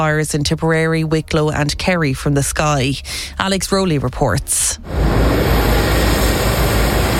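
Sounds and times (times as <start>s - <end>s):
speech: 0.0s - 5.5s
Air Corps helicopter engines starting up for aerial firefighting: 4.8s - 7.1s.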